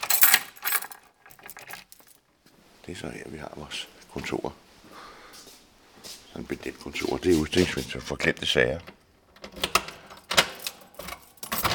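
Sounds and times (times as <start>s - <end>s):
bunch of school door keys jangling on a janitor's belt: 0.0s - 2.2s, 10.2s - 11.7s
speech: 2.9s - 4.6s, 6.4s - 9.0s.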